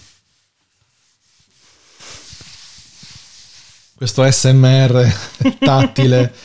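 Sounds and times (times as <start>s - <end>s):
hand rubbing cotton paper cover of a book with watercolour illustrations: 0.0s - 4.0s
speech: 4.0s - 6.4s
laughter: 5.1s - 6.4s.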